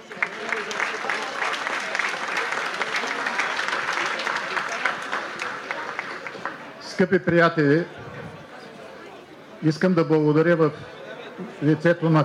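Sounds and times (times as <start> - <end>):
applause from a sizeable crowd: 0.0 - 7.0
speech: 7.0 - 8.0, 9.6 - 12.2.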